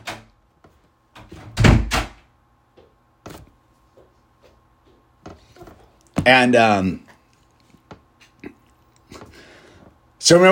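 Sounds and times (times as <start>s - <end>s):
door slamming shut with a heavy booming thud: 1.4s - 2.2s
quiet knocks and bumps: 2.7s - 6.4s
speech: 6.3s - 7.0s, 10.3s - 10.5s.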